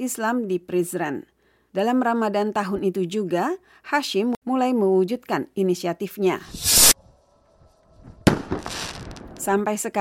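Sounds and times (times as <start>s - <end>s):
speech: 0.0s - 6.8s, 9.5s - 10.0s
fireworks launched into the sky and bursting at sunset: 6.5s - 7.0s, 8.0s - 9.5s.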